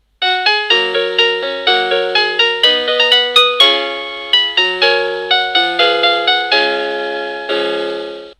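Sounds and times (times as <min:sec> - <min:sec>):
wireless doorbell melody: 0:00.2 - 0:08.3.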